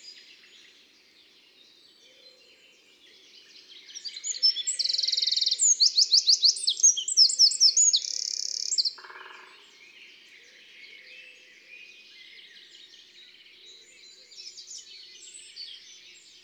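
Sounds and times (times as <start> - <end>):
Eurasian wren song: 4.0 - 9.4.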